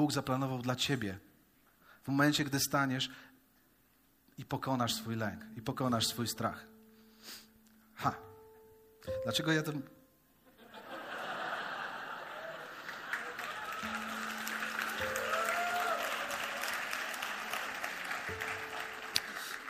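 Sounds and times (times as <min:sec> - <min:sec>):
speech: 0:00.0 - 0:01.3, 0:02.0 - 0:03.3, 0:04.4 - 0:07.4, 0:08.0 - 0:08.3, 0:09.0 - 0:10.0
laughter: 0:10.5 - 0:14.3
audience applause: 0:11.9 - 0:19.6.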